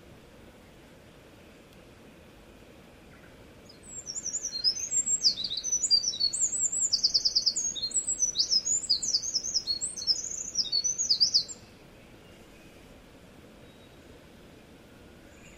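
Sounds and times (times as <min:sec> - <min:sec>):
low background noise: 0:00.0 - 0:15.5
wren singing: 0:03.7 - 0:11.7.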